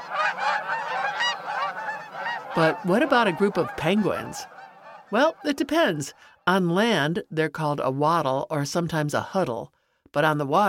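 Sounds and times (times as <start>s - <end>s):
gaggle of geese honking: 0.0s - 6.3s
speech: 2.6s - 10.6s.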